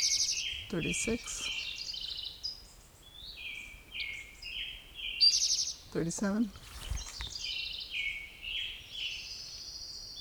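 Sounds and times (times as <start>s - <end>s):
low steady background: 0.0s - 5.0s, 5.6s - 7.6s
Western Tanager singing: 0.0s - 10.2s
speech: 0.7s - 1.6s, 6.0s - 6.6s.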